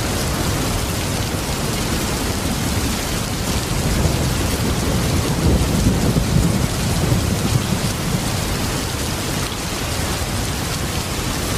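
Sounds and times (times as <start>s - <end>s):
heavy rain pouring: 0.0s - 11.5s
deep rumble of thunder: 2.4s - 10.6s.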